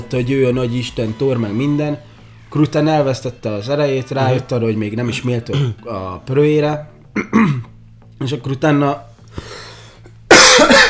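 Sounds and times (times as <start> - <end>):
speech: 0.1 - 9.6
loud harsh cough: 5.5 - 5.8, 7.2 - 7.7, 10.3 - 10.8.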